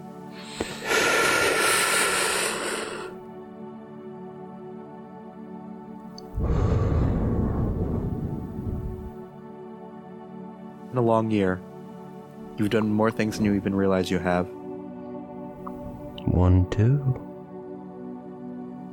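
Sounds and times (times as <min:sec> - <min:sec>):
deep breath drawn in during a guided meditation: 0:00.3 - 0:03.2, 0:06.4 - 0:09.0
speech: 0:11.0 - 0:11.7, 0:12.6 - 0:14.6, 0:16.4 - 0:17.3.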